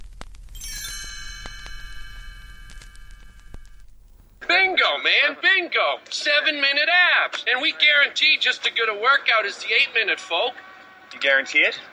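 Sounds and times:
bright chime ringing as read-along book page-turn cue: 0:00.6 - 0:03.9
speech: 0:04.9 - 0:11.9.

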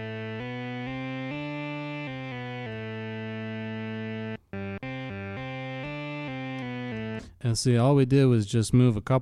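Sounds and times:
fat buzzy square-wave synthesizer tone from two oscillators: 0:00.0 - 0:07.3
speech: 0:07.4 - 0:09.2.

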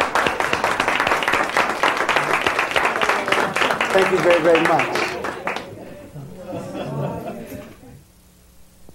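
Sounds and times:
crowd clapping: 0:00.0 - 0:06.7
laughter: 0:02.1 - 0:08.0
speech: 0:04.0 - 0:05.0.

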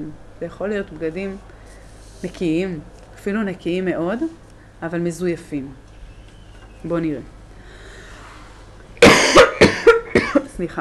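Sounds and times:
speech: 0:00.0 - 0:05.8, 0:06.8 - 0:07.4, 0:10.6 - 0:10.7
woman coughing harsh throaty coughs: 0:09.0 - 0:10.5.

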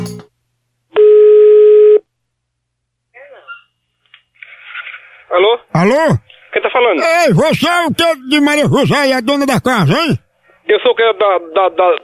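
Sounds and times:
steady electronic telephone ring tone: 0:01.0 - 0:02.0
speech: 0:05.8 - 0:12.0.

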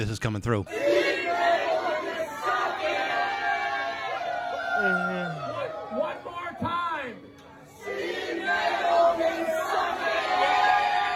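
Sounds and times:
speech: 0:00.0 - 0:01.4, 0:04.8 - 0:06.2
large crowd shouting and cheering at Halloween party: 0:00.7 - 0:11.1
scattered whoops from crowd: 0:04.1 - 0:06.0.

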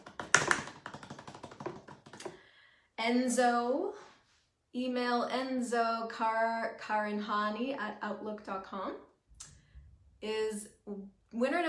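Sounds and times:
fingers drumming on a computer keyboard: 0:00.0 - 0:02.3
speech: 0:03.0 - 0:04.1, 0:04.7 - 0:09.1, 0:10.2 - 0:11.6.

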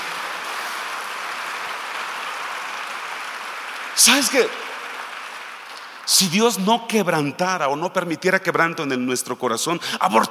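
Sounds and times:
crowd applauding: 0:00.0 - 0:07.2
speech: 0:04.0 - 0:04.6, 0:06.1 - 0:10.2.

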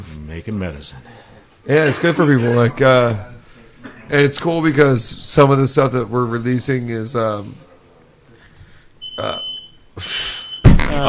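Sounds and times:
speech: 0:00.3 - 0:03.3, 0:04.1 - 0:07.7
fire alarm going off at a cannabis cup event: 0:09.0 - 0:09.8.

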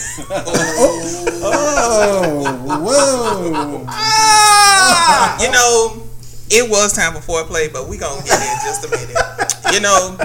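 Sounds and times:
laughter: 0:00.0 - 0:05.7, 0:08.2 - 0:10.2
speech: 0:00.2 - 0:04.4, 0:05.0 - 0:10.2
cat retching and yowling while throwing up: 0:00.7 - 0:05.4.

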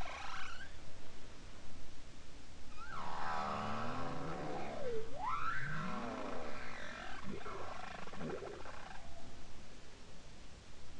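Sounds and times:
bowhead whale song off Spitsbergen: 0:02.7 - 0:09.2.

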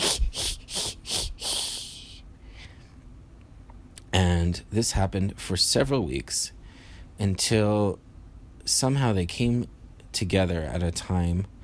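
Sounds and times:
voice imitating a cat hissing: 0:00.0 - 0:02.2
speech: 0:04.2 - 0:06.6, 0:07.2 - 0:08.0, 0:08.7 - 0:11.6.

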